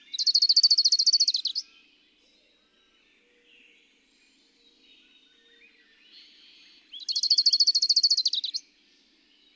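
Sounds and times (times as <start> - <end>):
bird trilling: 0.2 - 1.6, 7.1 - 8.6.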